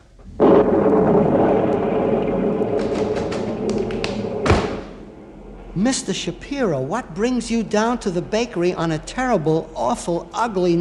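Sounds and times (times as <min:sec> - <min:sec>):
sharp storm crackles: 0:00.2 - 0:05.1
rain roaring in a storm sound effect: 0:00.2 - 0:08.4
rumbling thunder in a storm sound effect: 0:00.4 - 0:06.8
speech: 0:05.8 - 0:10.7.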